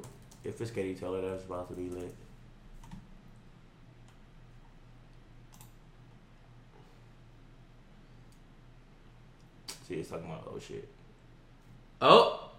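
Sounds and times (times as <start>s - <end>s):
typing a search on a computer keyboard: 0.0s - 0.5s, 1.7s - 2.2s, 2.8s - 3.1s
speech: 0.4s - 2.3s, 9.9s - 11.0s, 12.0s - 12.4s.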